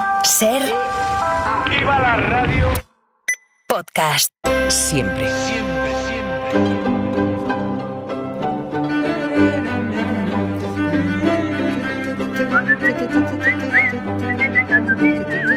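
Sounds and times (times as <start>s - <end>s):
speech: 0.3s - 2.8s, 3.8s - 6.9s
steady musical backing with a deep bass line: 4.5s - 15.5s
bright whistled tune: 12.4s - 15.5s.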